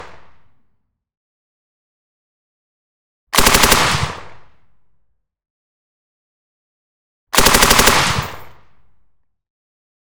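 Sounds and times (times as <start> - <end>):
Heckler & Koch MG4 5.56mm machine gun firing clean bursts: 3.4 - 3.9, 7.3 - 8.4.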